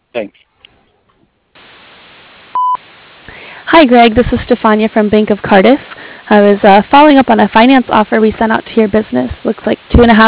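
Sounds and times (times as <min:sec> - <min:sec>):
constant hiss: 0:00.0 - 0:10.2
speech: 0:00.2 - 0:00.4, 0:03.8 - 0:10.2
answering machine beep: 0:02.5 - 0:02.8.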